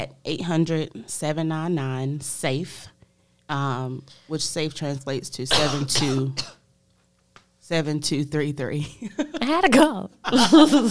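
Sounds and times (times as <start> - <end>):
speech: 0.0 - 2.9, 3.5 - 6.6, 7.7 - 10.8
harsh cough into a microphone: 5.5 - 6.7
people talking and chuckling: 10.3 - 10.8.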